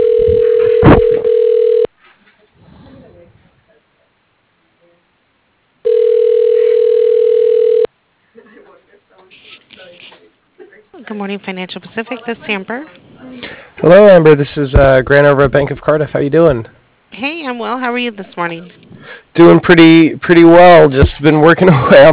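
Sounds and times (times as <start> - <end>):
telephone ringback tone during a call transfer: 0.0 - 1.9, 5.8 - 7.9
speech: 11.3 - 13.0, 13.8 - 18.8, 19.4 - 22.1.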